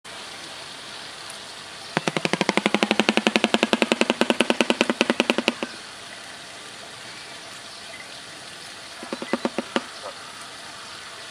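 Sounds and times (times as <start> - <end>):
shoebill stork calling: 2.0 - 5.8, 9.0 - 10.4.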